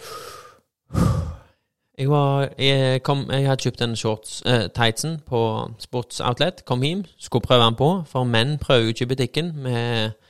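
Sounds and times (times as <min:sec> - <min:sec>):
breathy bursts: 0:00.0 - 0:01.6
speech: 0:02.0 - 0:10.2.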